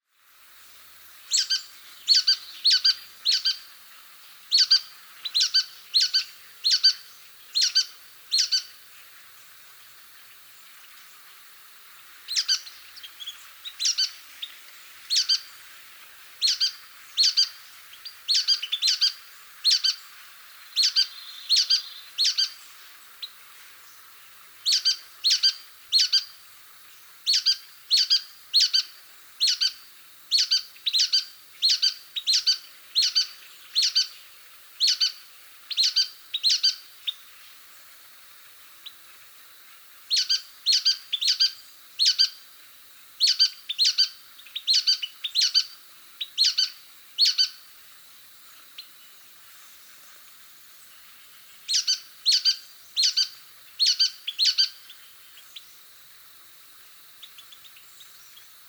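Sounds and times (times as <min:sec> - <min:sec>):
nuthatch calling: 0:01.3 - 0:03.7, 0:04.5 - 0:08.8, 0:12.3 - 0:15.6, 0:16.4 - 0:23.4, 0:24.0 - 0:26.4, 0:27.3 - 0:34.2, 0:34.8 - 0:37.2, 0:40.1 - 0:42.4, 0:43.2 - 0:47.6, 0:51.6 - 0:55.6.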